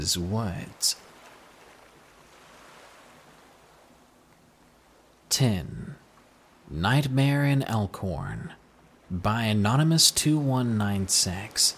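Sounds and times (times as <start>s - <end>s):
speech: 0.0s - 1.1s, 5.3s - 6.0s, 6.7s - 11.7s
ocean surf waves breaking and rushing: 0.0s - 11.7s
wind: 0.0s - 11.7s.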